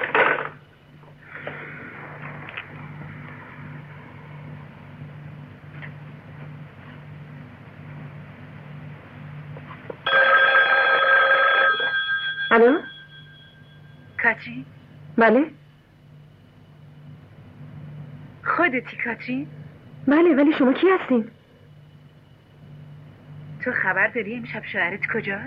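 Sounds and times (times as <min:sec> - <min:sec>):
faint hum: 0:00.0 - 0:25.4
telephone ringing: 0:10.1 - 0:14.1
speech: 0:12.6 - 0:12.8, 0:14.4 - 0:15.6, 0:18.7 - 0:21.4, 0:23.8 - 0:25.4.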